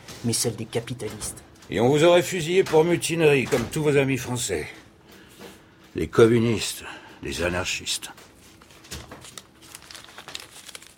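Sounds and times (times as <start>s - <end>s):
speech: 0.2s - 4.8s, 6.0s - 8.2s
paper documents crumpling while being handled: 8.3s - 10.9s.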